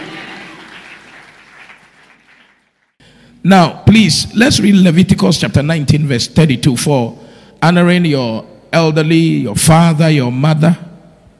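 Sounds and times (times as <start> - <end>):
crowd clapping: 0.0 - 3.0
speech: 3.4 - 10.9.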